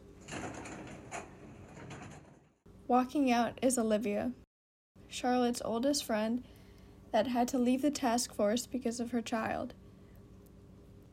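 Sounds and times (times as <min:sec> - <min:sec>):
elevator doors sliding open: 0:00.2 - 0:02.5
speech: 0:02.9 - 0:04.4, 0:05.1 - 0:09.8.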